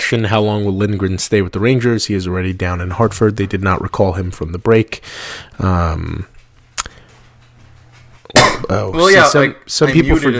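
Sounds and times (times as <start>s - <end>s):
low electrical hum: 0.0s - 10.3s
speech: 0.1s - 6.3s, 8.3s - 10.3s
person coughing: 8.3s - 8.8s.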